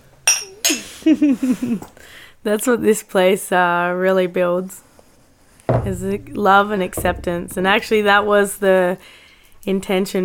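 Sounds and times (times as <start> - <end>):
bright glass clinks: 0.3 - 0.9
speech: 1.0 - 4.9, 5.7 - 10.2.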